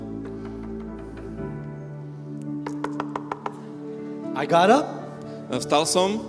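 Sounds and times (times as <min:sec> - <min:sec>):
knocking on a door at night: 0:02.7 - 0:03.7
speech: 0:04.4 - 0:06.2.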